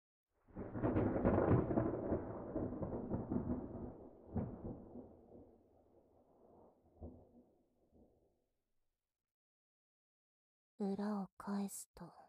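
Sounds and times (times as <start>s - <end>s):
loud roll of thunder rumbling: 0.5s - 7.4s
speech: 10.8s - 12.2s.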